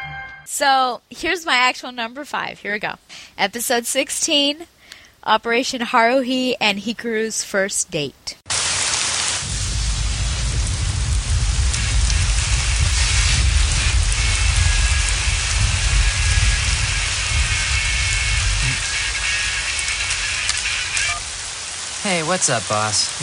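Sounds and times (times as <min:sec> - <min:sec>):
speech: 0:00.6 - 0:08.4, 0:22.3 - 0:23.2
heavy rain during a thunderstorm: 0:08.5 - 0:23.2
deep low rumbling of thunder: 0:08.8 - 0:23.2.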